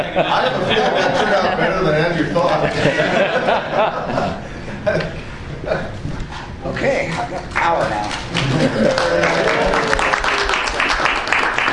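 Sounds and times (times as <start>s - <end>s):
speech: 0.0s - 5.8s, 6.7s - 10.1s
laughter: 0.0s - 5.9s, 8.3s - 10.6s
dense steady applause from a group: 7.5s - 11.7s.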